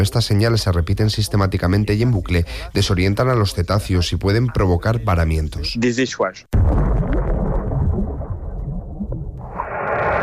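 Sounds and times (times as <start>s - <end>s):
speech: 0.0s - 7.0s
underwater bomb explosions: 6.5s - 10.2s.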